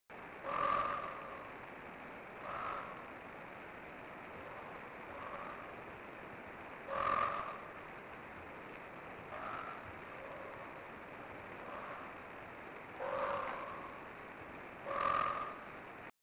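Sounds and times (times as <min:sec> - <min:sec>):
Eleutherodactylus inoptatus low-pitched grating croaks in mesic forest: 0:00.4 - 0:01.6, 0:02.4 - 0:03.2, 0:04.3 - 0:05.9, 0:06.8 - 0:07.9, 0:09.2 - 0:10.9, 0:11.5 - 0:14.2, 0:14.8 - 0:15.8.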